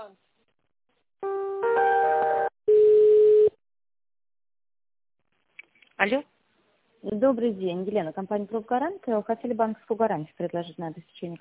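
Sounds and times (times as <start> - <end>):
electronic telephone tones while an office call is transferred: 1.6 - 3.6
speech: 6.0 - 6.3, 7.0 - 11.3.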